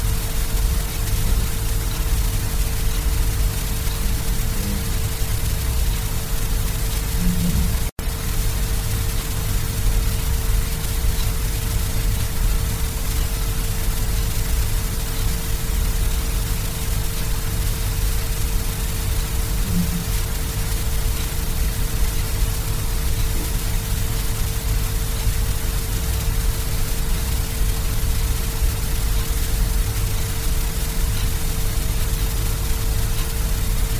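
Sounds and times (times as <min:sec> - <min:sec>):
faint constant tone hum: 0:00.0 - 0:33.9
pink noise hiss: 0:00.0 - 0:33.9.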